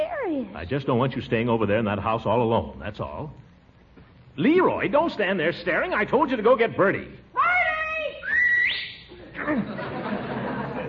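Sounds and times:
speech: 0:00.4 - 0:03.5, 0:04.4 - 0:07.2, 0:09.5 - 0:09.7
person whistling loudly: 0:08.2 - 0:09.1
laughter: 0:09.1 - 0:10.8.

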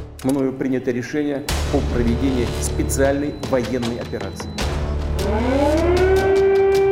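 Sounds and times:
speech: 0:00.2 - 0:04.6
air raid sirens sounding over a capital city: 0:04.9 - 0:06.9.

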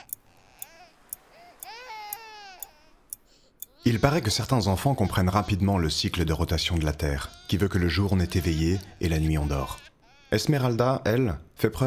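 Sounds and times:
steady clock ticking: 0:00.0 - 0:03.8
newborn baby's thin wavering first cry at night: 0:00.0 - 0:10.7
speech: 0:03.8 - 0:11.8.

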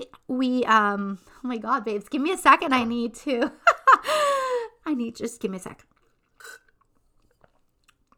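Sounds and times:
speech: 0:00.4 - 0:04.2, 0:04.9 - 0:06.6
wet mouth clicks: 0:05.8 - 0:08.1
slurping sip of green juice: 0:05.9 - 0:08.1
swallowing: 0:05.9 - 0:08.1.

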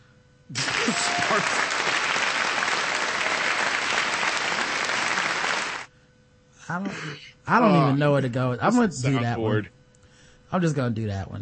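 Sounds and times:
female-only studio audience applause: 0:00.5 - 0:05.9
studio audience cheering: 0:00.5 - 0:05.9
speech: 0:01.4 - 0:01.6, 0:06.7 - 0:09.8, 0:10.5 - 0:11.4.

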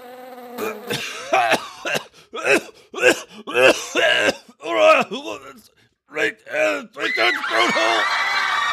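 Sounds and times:
man choking and coughing after inhaling a gnat: 0:00.6 - 0:05.3
laughter: 0:07.3 - 0:08.7.

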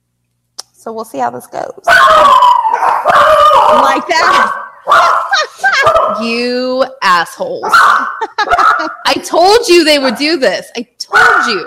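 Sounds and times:
speech: 0:00.8 - 0:02.4, 0:03.7 - 0:11.6
dogs howling in a bedroom: 0:01.9 - 0:06.4, 0:07.5 - 0:09.1, 0:11.1 - 0:11.6
laughter: 0:03.7 - 0:04.5, 0:05.2 - 0:06.5, 0:07.8 - 0:09.4.

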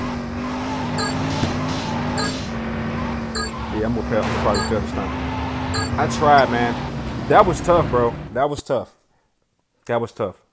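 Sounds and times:
car engine drone in a video game: 0:00.0 - 0:08.4
speech: 0:03.8 - 0:05.3, 0:06.0 - 0:09.0, 0:09.9 - 0:10.4.

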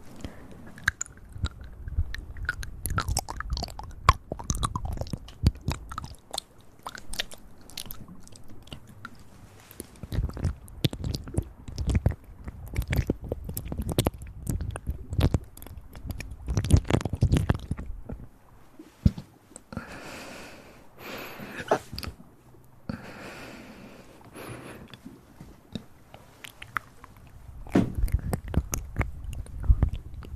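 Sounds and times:
soft airy breaths: 0:00.0 - 0:02.6, 0:04.3 - 0:13.9, 0:18.0 - 0:30.3
crisp wet mouth clicks and chewing-like crackles: 0:00.1 - 0:18.3, 0:19.0 - 0:19.8, 0:24.2 - 0:30.3
low thump: 0:27.7 - 0:28.1.

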